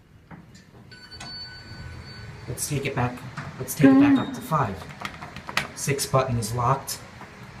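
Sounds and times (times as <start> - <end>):
rumble of passenger elevator doors sliding open: 0.4 - 5.8
soft electronic chime of passenger elevator arriving: 0.9 - 3.0, 3.8 - 4.6
speech: 2.5 - 5.0, 5.8 - 7.1.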